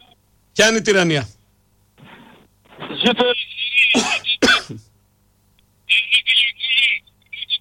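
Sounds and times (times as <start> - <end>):
speech: 0.6 - 1.4, 3.0 - 3.5
harsh crackly bursts of distorted noise from a phone line: 1.7 - 4.4, 5.3 - 7.5.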